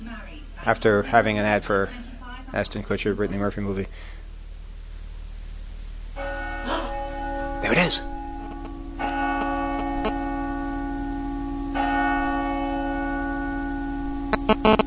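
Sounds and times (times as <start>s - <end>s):
speech: 0.1s - 4.2s, 7.9s - 8.1s
church bells tolling: 6.2s - 14.7s.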